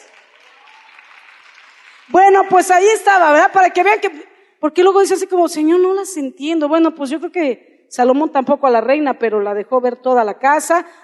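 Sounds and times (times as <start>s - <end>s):
audience clapping: 0.0s - 2.3s
speech: 2.1s - 11.0s.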